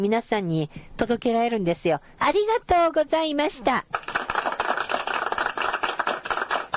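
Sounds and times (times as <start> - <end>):
speech: 0.0 - 4.1
applause sound effect played from a sampler machine: 3.9 - 6.7.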